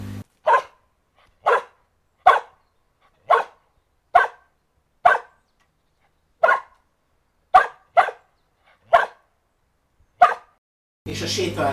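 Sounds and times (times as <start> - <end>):
dog barking to request a held-up ball: 0.4 - 5.4, 6.4 - 6.8, 7.5 - 9.3, 10.2 - 10.6
speech: 11.1 - 11.7.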